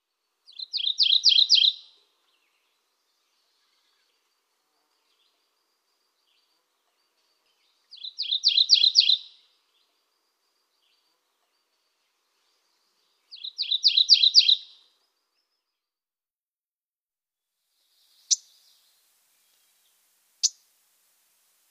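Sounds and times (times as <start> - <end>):
Mourning Warbler: 0.2 - 5.5, 6.2 - 15.8.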